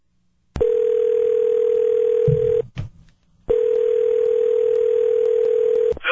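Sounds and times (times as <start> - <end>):
long steady telephone tones: 0.6 - 2.6, 3.5 - 5.9.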